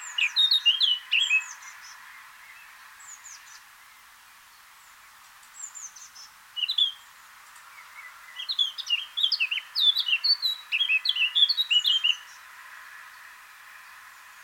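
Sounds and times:
Eurasian blackcap Sylvia atricapilla warbling song of clear whistles: 0.0s - 4.0s, 5.4s - 12.4s.

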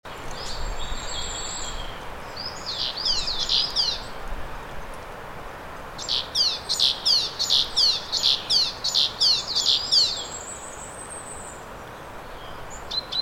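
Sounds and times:
steady background hiss: 0.1s - 13.1s
great tit Parus major calls: 0.3s - 4.2s, 6.0s - 11.7s.

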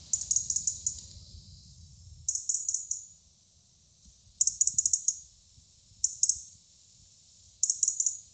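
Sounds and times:
European robin giving rapid high ticking calls, Erithacus rubecula: 0.0s - 1.0s, 2.3s - 3.2s, 4.4s - 5.2s, 6.0s - 6.5s, 7.6s - 8.3s
faint low rumble: 0.0s - 6.0s.

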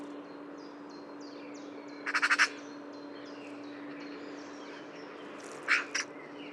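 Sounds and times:
Eurasian magpie Pica pica giving harsh rattling notes: 2.0s - 2.6s, 5.6s - 6.1s.

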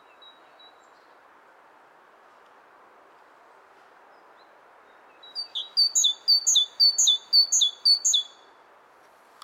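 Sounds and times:
great tit Parus major singing a two-note phrase: 5.2s - 8.4s.

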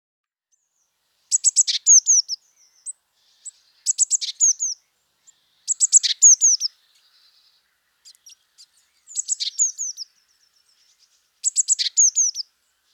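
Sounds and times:
Eurasian blue tit Cyanistes caeruleus chattering with clicking notes and slurred whistles: 1.3s - 2.4s, 5.7s - 6.7s, 9.1s - 10.0s, 11.4s - 12.4s.

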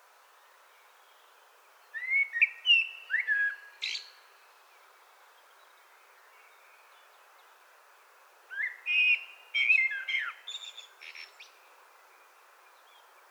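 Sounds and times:
Common blackbird Turdus merula song of mellow whistled phrases and high twitters: 0.4s - 4.3s, 8.5s - 13.1s.

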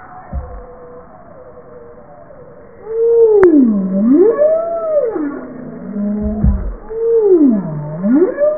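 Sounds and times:
faint overlapping tones: 0.0s - 8.5s
short low knocks: 0.3s - 0.8s, 6.1s - 7.0s
Bowhead whale moans: 2.9s - 8.5s.

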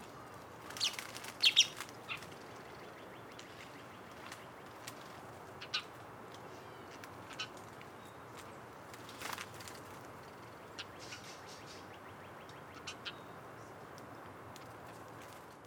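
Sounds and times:
steady background hiss: 0.0s - 15.6s
house sparrow chirps, Passer domesticus: 0.7s - 4.8s, 5.5s - 8.4s, 10.3s - 13.8s.

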